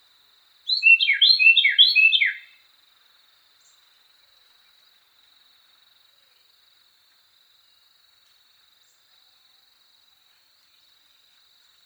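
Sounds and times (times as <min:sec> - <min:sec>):
Carolina wren song: 0:00.7 - 0:02.6.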